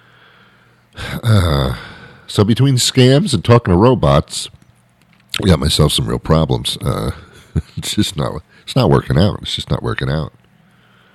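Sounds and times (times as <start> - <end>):
person clearing throat: 1.0 - 1.9
speech: 1.3 - 4.6, 5.4 - 7.2, 7.8 - 10.4.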